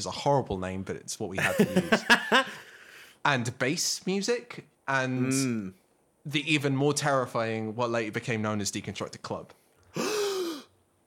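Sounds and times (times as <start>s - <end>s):
speech: 0.0s - 2.6s, 3.2s - 10.1s
laughter: 1.4s - 2.6s
person gasping: 9.9s - 10.7s.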